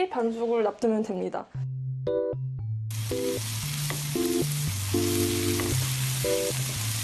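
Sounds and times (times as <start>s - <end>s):
speech: 0.0s - 2.2s
light melodic music track: 1.6s - 7.0s
minced beef sizzling in a pan for bolognese sauce: 2.9s - 7.0s.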